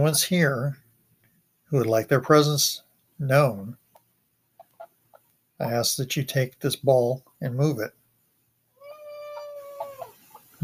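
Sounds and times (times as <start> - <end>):
speech: 0.0 - 0.8, 1.7 - 3.8, 5.6 - 8.0
cat meowing: 8.8 - 10.2.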